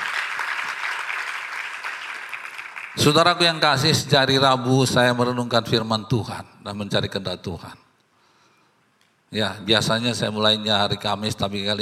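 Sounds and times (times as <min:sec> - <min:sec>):
audience clapping as applause for God: 0:00.0 - 0:03.6
speech: 0:03.0 - 0:07.8, 0:09.3 - 0:11.8.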